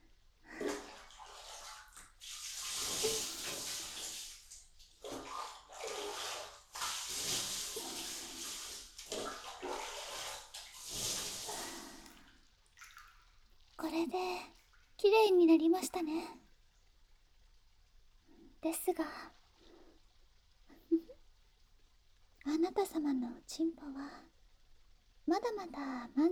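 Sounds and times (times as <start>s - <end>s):
water running and pouring while someone rinses off: 0.4s - 15.1s
speech: 14.1s - 16.4s, 18.7s - 19.4s, 23.0s - 24.3s, 25.3s - 26.2s.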